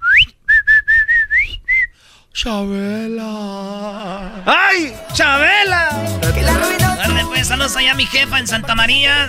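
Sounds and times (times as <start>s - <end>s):
person whistling a call: 0.0s - 2.0s
speech: 2.4s - 9.2s.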